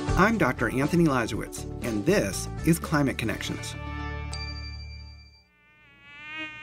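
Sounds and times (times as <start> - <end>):
speech: 0.2 - 3.9
mosquito whine: 5.5 - 6.6.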